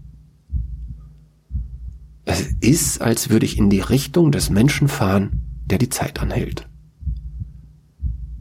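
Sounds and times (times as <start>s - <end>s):
faint hum: 0.0s - 8.3s
muffled low heartbeat heard in the ear: 0.0s - 8.3s
speech: 2.3s - 6.7s.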